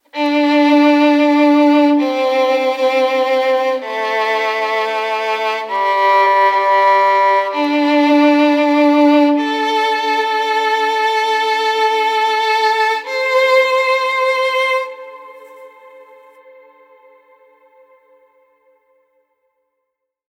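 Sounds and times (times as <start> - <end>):
violins playing in D minor at 130 bpm: 0.0 - 17.7.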